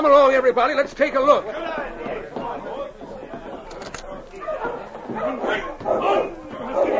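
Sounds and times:
speech: 0.0 - 2.7, 5.1 - 6.8
faint human chatter: 0.0 - 6.9
team of sled dogs barking and yipping: 4.4 - 6.9.

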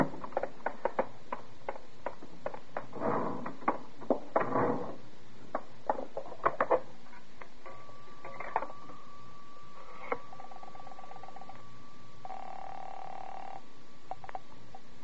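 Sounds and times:
steady faint hum: 0.0 - 15.0
longer buzzing telephone tone: 7.6 - 14.9.

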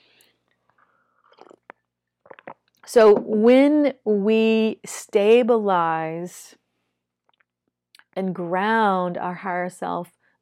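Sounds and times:
water being sipped with slurps and swallows: 1.2 - 2.8
speech: 2.9 - 6.6, 8.2 - 10.3.

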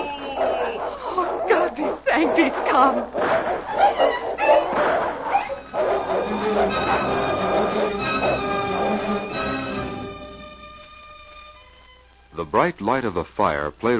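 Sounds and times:
dogs snarling and barking in a scuffle: 0.0 - 9.9
speech: 2.2 - 4.0, 12.5 - 13.9.

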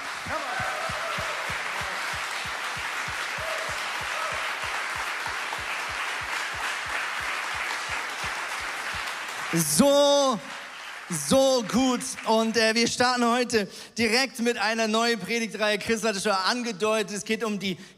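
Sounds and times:
rhythmic clapping or stomping: 0.0 - 12.2
crowd applauding: 0.0 - 12.3
speech: 0.2 - 0.6, 9.5 - 10.5, 11.1 - 17.9.

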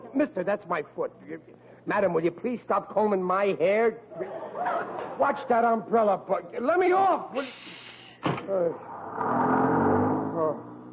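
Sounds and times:
speech: 0.2 - 7.7, 8.5 - 9.4
sharp thump like a door closing: 8.2 - 8.6
bus engine revving as the bus pulls away: 8.8 - 10.9.

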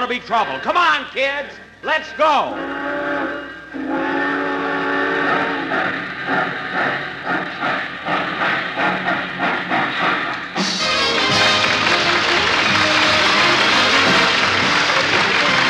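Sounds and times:
speech: 0.0 - 2.9
passenger train chugging pulling out of the station: 0.0 - 15.6
passenger train whistle: 2.5 - 6.9, 10.0 - 15.6.

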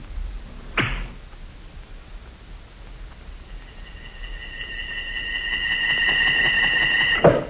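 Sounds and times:
arrow thudding impact: 0.8 - 1.2
bowstring twang as arrow leaves the bow: 0.8 - 1.2
arrow whistling whoosh in flight: 3.4 - 7.4.

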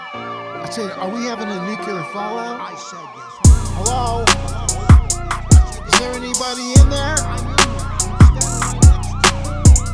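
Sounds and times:
emergency vehicle siren yelping: 0.0 - 9.9
speech: 0.1 - 4.9, 5.9 - 7.9
heavy thumping beats with crisp percussion hits: 3.5 - 9.9.

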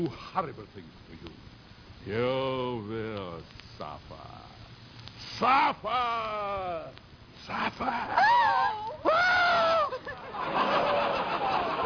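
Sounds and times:
speech: 0.0 - 4.6, 5.2 - 9.2
laughter: 7.5 - 11.8
woman screaming: 7.9 - 10.0.

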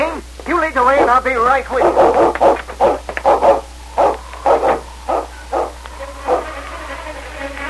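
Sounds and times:
speech: 0.2 - 2.6
Malamute dog barking: 0.9 - 6.6.

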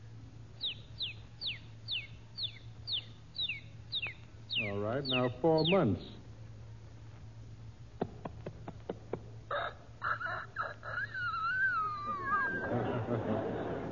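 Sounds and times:
hissy noise: 0.0 - 13.9
low steady hum: 0.0 - 13.9
one-day-old rooster chick peeping: 0.6 - 6.2, 9.5 - 12.6
speech: 4.9 - 6.2
laughter: 10.1 - 13.9.

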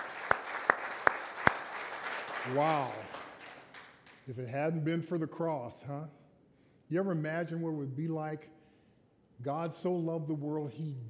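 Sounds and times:
church congregation clapping hands in unison during a worship service: 0.0 - 4.6
speech: 2.4 - 3.2, 4.3 - 6.2, 6.9 - 8.6, 9.4 - 11.0.

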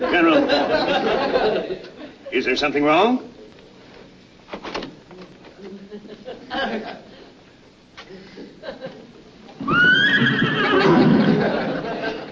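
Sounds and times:
laughter: 0.0 - 2.3, 5.6 - 7.4, 8.1 - 9.3, 10.0 - 12.2
speech: 0.0 - 3.3
light shuffling noises: 3.3 - 6.4
horse whinnying inside a building at an army post: 9.6 - 11.3.

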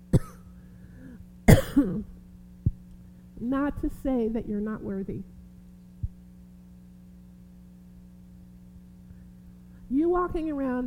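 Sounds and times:
low hum: 0.0 - 9.9
person clearing throat with a tickle in the throat: 0.1 - 0.5, 1.5 - 2.1
person coughing with a tickle in the throat: 0.1 - 2.2
speech: 3.4 - 5.3, 10.2 - 10.8.

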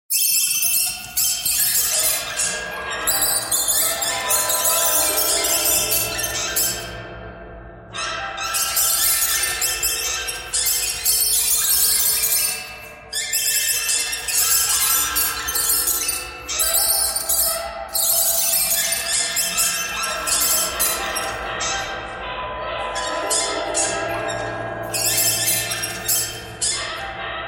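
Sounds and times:
birds: 0.1 - 7.1, 8.0 - 27.4.

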